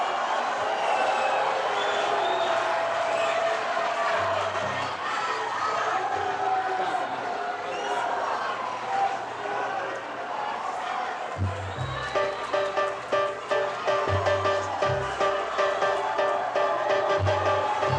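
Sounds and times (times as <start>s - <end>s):
large audience clapping: 0.0s - 5.1s, 11.3s - 17.9s
large audience shouting and booing a singer: 0.0s - 17.9s.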